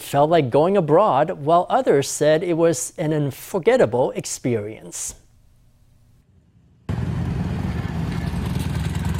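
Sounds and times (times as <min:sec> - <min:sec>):
speech: 0:00.1 - 0:05.2
engines of lined-up motorbikes rumbling at Gushan Ferry Pier in Kaohsiung: 0:06.9 - 0:09.1.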